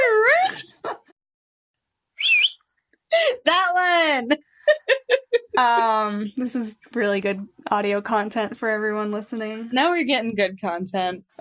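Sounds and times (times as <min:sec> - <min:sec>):
person whistling to call a dog: 0:02.2 - 0:02.6
speech: 0:03.4 - 0:05.0, 0:05.6 - 0:11.3.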